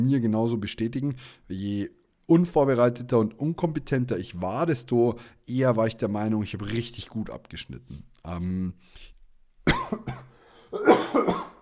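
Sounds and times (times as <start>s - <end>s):
speech: 0.0s - 9.1s, 9.7s - 11.5s
person coughing after swallowing wrong while drinking: 9.7s - 11.5s.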